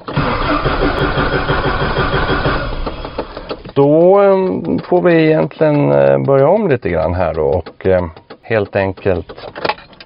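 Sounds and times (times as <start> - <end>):
grey Volvo 240 engine cranking without catching: 0.0 - 10.0
speech: 3.8 - 9.7.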